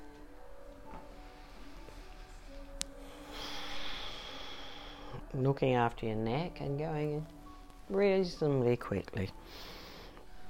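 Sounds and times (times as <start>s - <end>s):
nasal inhale and exhale in a turtle-breath exercise: 2.5s - 5.2s, 9.4s - 10.3s
speech: 5.3s - 9.8s.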